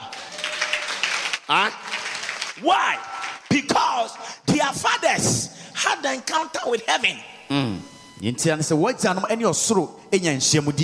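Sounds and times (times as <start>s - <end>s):
audience clapping: 0.0s - 3.8s
speech: 1.5s - 1.8s, 2.6s - 10.8s.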